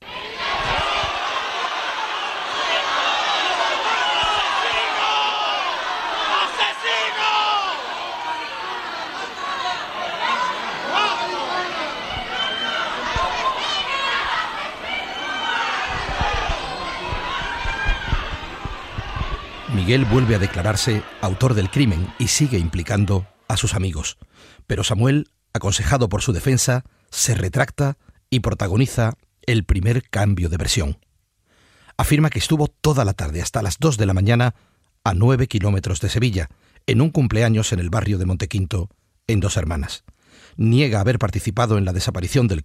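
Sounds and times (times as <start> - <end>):
angry crowd of citizens shouting and jeering at detainees outside courts: 0.0 - 23.5
speech: 19.9 - 31.1, 32.0 - 42.6.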